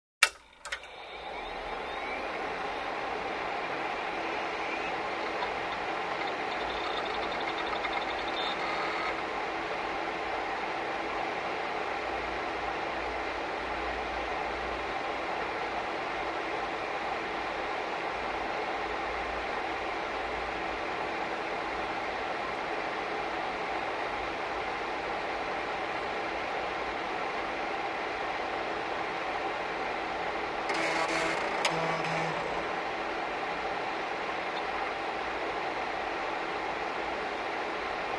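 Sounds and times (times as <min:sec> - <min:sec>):
computer turning on: 0:00.2 - 0:09.4, 0:30.7 - 0:33.3
computer fan noise: 0:00.2 - 0:38.1.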